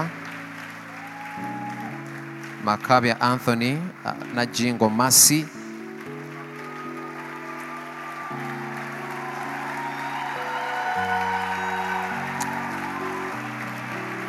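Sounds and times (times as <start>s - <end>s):
audience applause for couples at a church service: 0.0s - 14.2s
speech: 2.6s - 5.6s.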